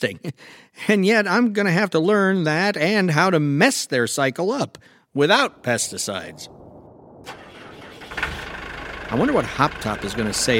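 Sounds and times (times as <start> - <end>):
speech: 0.0 - 6.6, 9.1 - 10.5
small Japanese tractor engine starting: 7.3 - 10.5.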